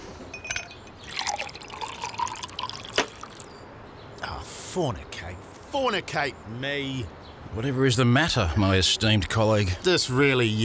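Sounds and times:
sharp clink of glass: 0.3 - 3.4
Appleton Estate rum poured into a glass: 0.5 - 3.5
speech: 4.7 - 10.6.

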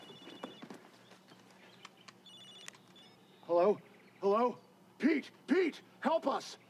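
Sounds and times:
cell phone ringing with electronic trill: 0.0 - 0.8
speech: 3.5 - 4.6, 6.2 - 6.6.

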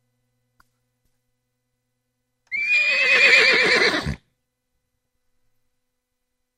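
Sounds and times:
toy horse from a flea market neighing: 2.5 - 4.2.

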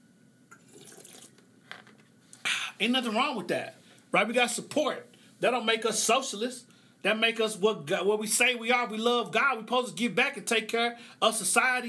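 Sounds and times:
water being poured into a glass for a drink: 0.5 - 1.4
speech: 2.8 - 11.8.

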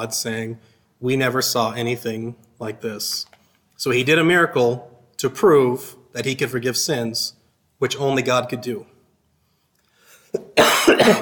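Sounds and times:
speech: 0.0 - 8.9, 10.3 - 11.2
person coughing: 10.2 - 11.2
throat clearing: 10.3 - 11.2.

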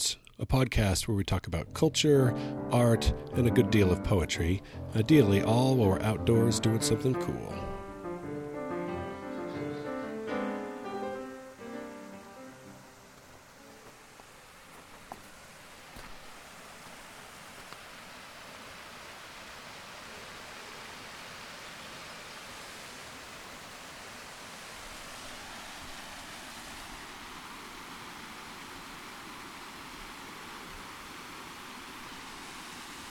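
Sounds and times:
speech: 0.1 - 7.7
small waterfall from snow runoff rushing: 7.5 - 33.0.

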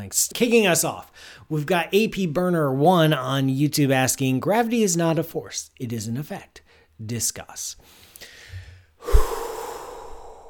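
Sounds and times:
speech: 0.0 - 8.0
person taking a big breath: 7.9 - 10.4.

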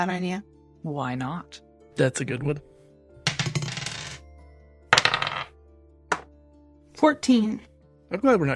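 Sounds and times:
speech: 0.0 - 2.7, 7.0 - 8.5
dice rolling across a hard surface during a game: 3.3 - 4.2, 4.9 - 5.5.

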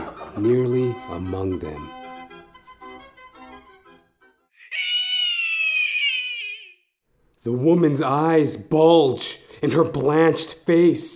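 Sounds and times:
speech: 0.4 - 2.0, 7.4 - 11.1
woman's loud piercing hysterical shriek: 4.6 - 6.8.

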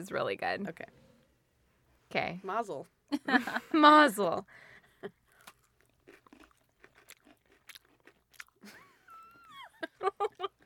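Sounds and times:
speech: 0.0 - 1.0, 2.1 - 5.2, 10.0 - 10.5
crunchy cereal being chewed: 5.3 - 9.5.

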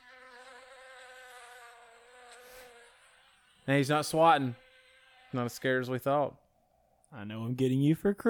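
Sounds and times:
bee buzzing: 0.0 - 6.2
speech: 3.7 - 4.6, 5.3 - 6.4, 7.1 - 8.2.

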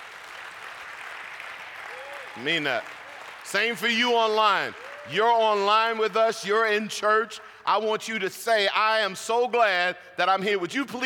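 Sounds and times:
church audience applause: 0.0 - 6.0
speech: 2.4 - 11.0.

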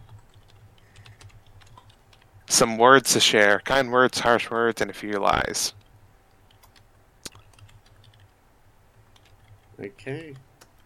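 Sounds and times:
typing on a computer keyboard: 0.0 - 2.3, 6.5 - 8.3, 9.1 - 10.8
low hum: 0.0 - 10.8
speech: 2.6 - 5.8, 9.8 - 10.5.

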